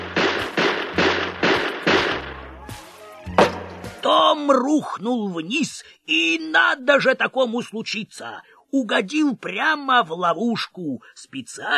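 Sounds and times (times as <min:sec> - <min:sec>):
pistol gunshots fired through attic floor: 0:00.0 - 0:02.5
speech: 0:04.0 - 0:11.7.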